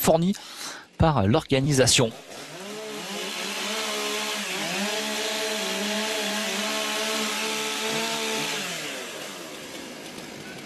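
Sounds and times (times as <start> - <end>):
speech: 0.1 - 2.5
chainsaw engine running, ready to cut poplar logs: 2.1 - 10.6.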